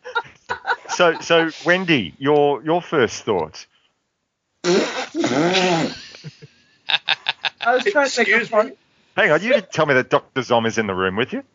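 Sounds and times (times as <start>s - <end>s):
laughter: 0.0s - 1.8s, 5.7s - 8.7s
speech: 1.0s - 3.7s, 7.7s - 11.5s
woman blowing a raspberry by mouth imitating a fart noise: 4.6s - 6.0s.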